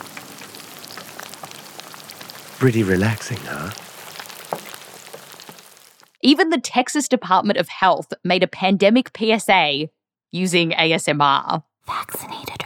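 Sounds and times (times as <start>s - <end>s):
chicken deep frying in hot oil: 0.0s - 6.2s
speech: 2.6s - 3.8s, 6.2s - 12.3s.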